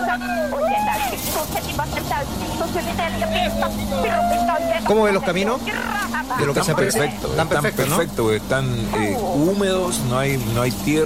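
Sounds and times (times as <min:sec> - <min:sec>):
rally car engine drone heard from inside a moving rally car on a rally stage: 0:00.0 - 0:11.0
speech: 0:01.5 - 0:11.0.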